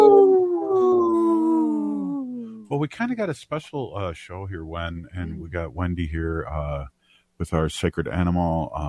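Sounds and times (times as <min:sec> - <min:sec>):
wolf howling: 0:00.0 - 0:02.6
speech: 0:02.8 - 0:08.8.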